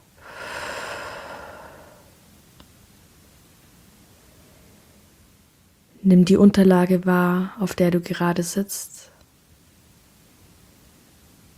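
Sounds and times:
deep breath in through nose and out through mouth: 0.2 - 2.1
speech: 6.0 - 9.1.

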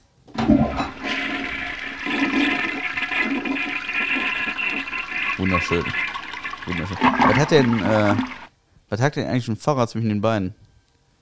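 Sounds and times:
toilet flushing: 0.4 - 8.5
speech: 5.5 - 10.6.

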